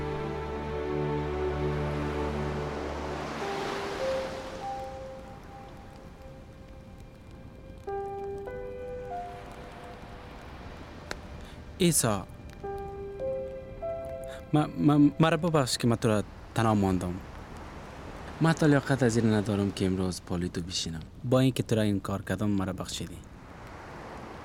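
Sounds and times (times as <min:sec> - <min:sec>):
sustained low musical tones humming: 0:00.0 - 0:16.5
ocean waves washing against the shore: 0:00.0 - 0:24.4
speech: 0:11.8 - 0:12.4, 0:14.5 - 0:17.3, 0:18.4 - 0:23.3.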